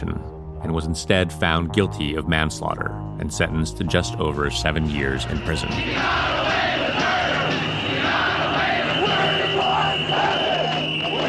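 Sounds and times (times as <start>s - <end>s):
speech: 0.0s - 7.1s
protest crowd shouting and chanting in the street: 5.6s - 11.2s.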